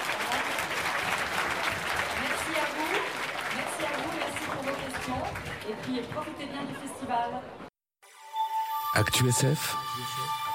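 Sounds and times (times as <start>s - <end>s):
audience applause: 0.0s - 6.3s
speech: 5.8s - 7.6s, 9.0s - 10.4s.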